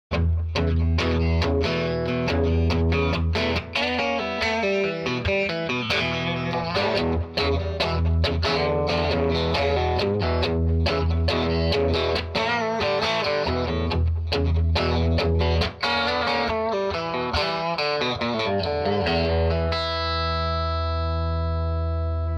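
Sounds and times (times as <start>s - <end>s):
rhythm guitar: 0.1s - 22.3s.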